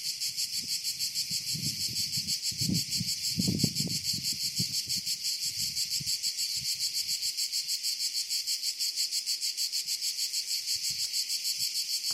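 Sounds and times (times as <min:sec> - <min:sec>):
cicada song: 0:00.0 - 0:12.1.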